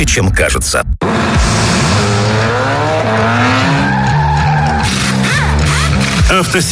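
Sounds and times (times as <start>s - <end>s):
speech: 0.0s - 0.9s, 6.4s - 6.6s
car engine revving: 1.0s - 6.3s
tires squealing: 1.2s - 6.4s.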